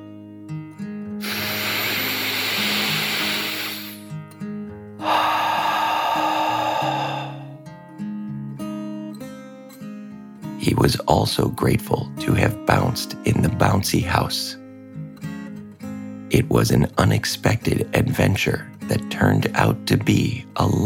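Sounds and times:
dragon's deep contented breath in and out: 1.2 - 4.1, 5.0 - 7.6
soft music: 4.3 - 20.8
speech: 10.6 - 14.6, 16.4 - 20.8.

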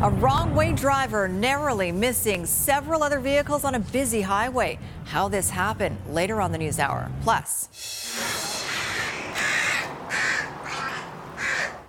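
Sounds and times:
speech: 0.0 - 8.0
crows cawing during dive-bombing season: 8.2 - 11.8.

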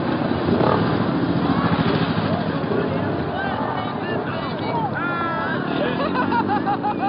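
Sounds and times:
loud dense crowd of overlapping voices: 0.0 - 7.0
motorcycle engines rumbling: 0.0 - 7.0
laughter: 4.3 - 7.0.

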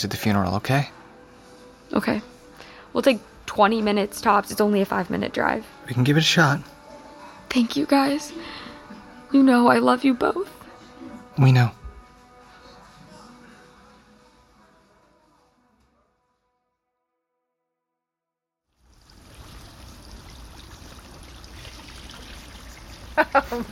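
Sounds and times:
speech: 0.0 - 1.0, 1.9 - 2.3, 2.9 - 6.7, 7.5 - 8.6, 9.3 - 10.6, 11.4 - 11.8
running tap water pouring over broccoli being washed: 18.8 - 23.7.

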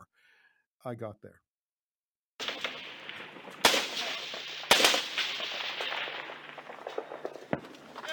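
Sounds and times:
speech: 0.8 - 1.5
gunfire in combat: 2.4 - 8.1.

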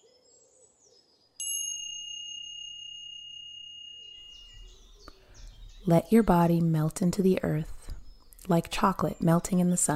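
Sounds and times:
soft bell chime: 1.4 - 5.7
speech: 5.8 - 7.8, 8.5 - 9.9.

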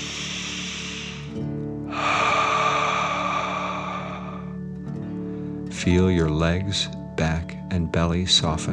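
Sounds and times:
slow deep breath in through the nose and airy exhale: 0.0 - 5.7
speech: 5.8 - 8.7.

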